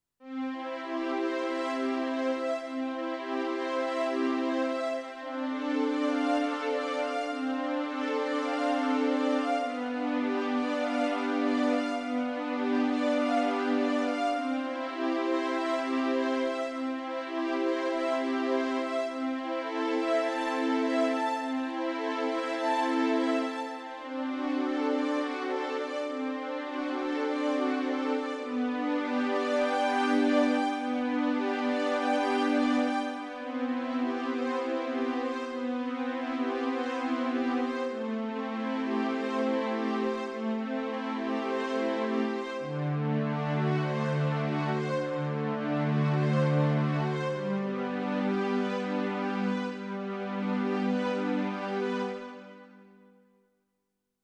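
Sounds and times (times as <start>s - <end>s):
synth strings: 0.3s - 52.9s.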